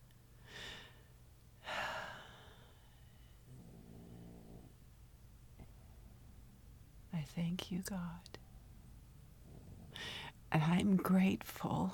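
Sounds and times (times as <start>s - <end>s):
faint steady hum: 0.0s - 11.9s
dog snoring: 3.5s - 4.8s
speech: 7.3s - 8.4s, 10.6s - 11.9s.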